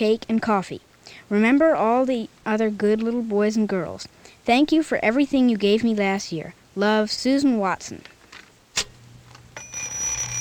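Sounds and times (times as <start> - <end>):
speech: 0.0 - 8.1
clock ringing with a bright high metallic ring: 9.6 - 10.4.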